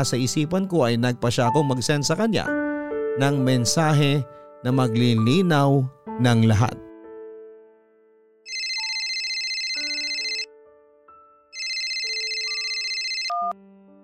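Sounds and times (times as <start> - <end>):
speech: 0.0 - 2.6, 3.2 - 6.8
soft melody of lower tones: 0.0 - 14.0
telephone ringing with an incoming call: 8.5 - 10.5, 11.6 - 13.6.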